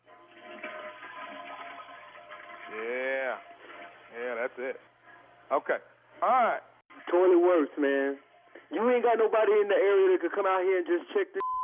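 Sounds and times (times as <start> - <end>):
toilet flushing: 0.0 - 5.3
speech: 2.8 - 3.0, 4.4 - 4.9, 5.5 - 11.6.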